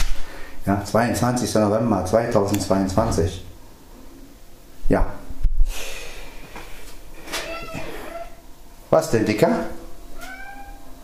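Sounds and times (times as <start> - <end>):
speech: 0.6 - 3.5, 4.9 - 5.2, 8.9 - 9.8
domestic cat meowing, complaining: 7.4 - 8.4, 10.2 - 10.9.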